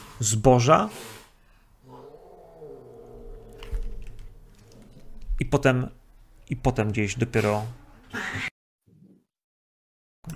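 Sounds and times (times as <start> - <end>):
speech: 0.2 - 1.2, 5.4 - 8.5
harsh breathy cat cry: 1.9 - 5.2.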